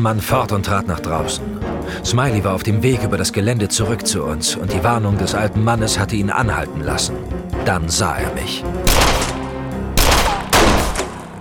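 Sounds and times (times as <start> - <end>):
speech: 0.0 - 9.3
gunshots exchanged in the dark: 8.8 - 11.3.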